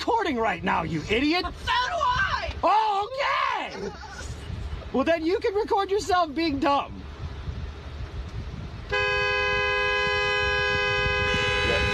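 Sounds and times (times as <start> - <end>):
low traffic rumble: 0.0 - 11.9
speech: 0.2 - 2.0, 2.6 - 4.3, 4.9 - 7.0
car horn blast: 8.9 - 11.9.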